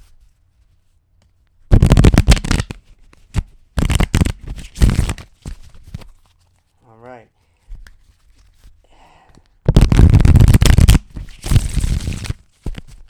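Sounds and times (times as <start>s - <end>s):
deck of cards being shuffled: 1.7s - 6.8s, 7.7s - 13.0s
person speaking a brief word: 6.8s - 7.5s.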